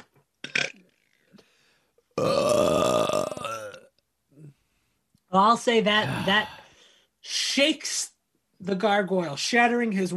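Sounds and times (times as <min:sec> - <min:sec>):
loud drawn-out deliberate burp from a person: 0:00.4 - 0:01.0, 0:02.2 - 0:04.5, 0:06.0 - 0:06.6
short grunting build-up noises from a person: 0:02.2 - 0:03.8, 0:06.0 - 0:06.7
speech: 0:05.3 - 0:06.6, 0:07.2 - 0:08.1, 0:08.7 - 0:10.1.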